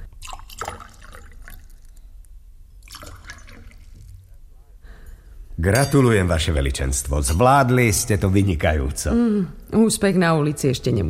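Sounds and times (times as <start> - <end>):
fresh water splashing and gurgling poured from a jug: 0.1 - 2.2, 2.8 - 4.3
speech: 5.6 - 11.0.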